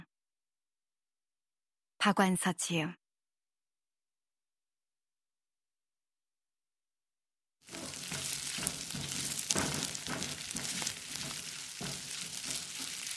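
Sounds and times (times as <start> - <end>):
speech: 2.0 - 3.0
vegetables stir-frying in a hot frying pan: 7.6 - 13.1.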